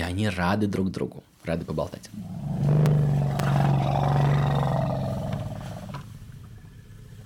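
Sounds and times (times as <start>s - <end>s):
speech: 0.1s - 2.8s
elephant greeting rumble: 2.2s - 7.2s.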